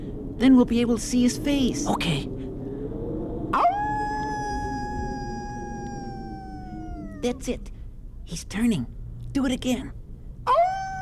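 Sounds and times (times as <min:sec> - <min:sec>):
low rumble: 0:00.0 - 0:11.0
speech: 0:00.4 - 0:02.4, 0:07.2 - 0:10.6
person imitating a wolf howl: 0:03.6 - 0:07.6, 0:10.5 - 0:11.0.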